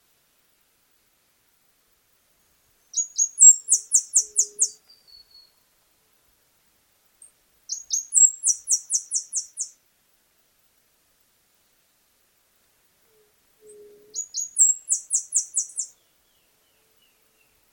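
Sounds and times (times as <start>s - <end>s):
Arremon flavirostris saffron-billed sparrow high thin song phrase: 2.9s - 5.6s, 7.7s - 9.8s, 13.1s - 17.7s.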